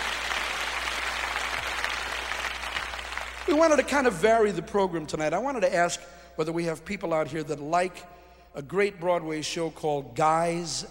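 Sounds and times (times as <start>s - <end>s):
crowd clapping: 0.0s - 4.2s
speech: 3.5s - 10.8s.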